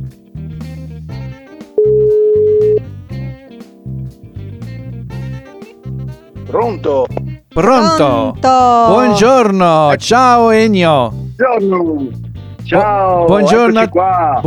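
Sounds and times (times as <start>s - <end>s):
busy music: 0.0s - 14.4s
ringback tone of an outgoing phone call: 1.8s - 2.8s
speech: 6.5s - 14.4s.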